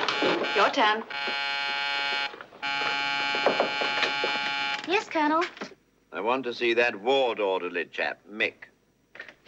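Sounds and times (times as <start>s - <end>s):
call buzzer on the wall outside a private hospital room: 0.0s - 4.9s
speech: 0.2s - 1.6s, 5.1s - 5.6s, 6.2s - 8.7s.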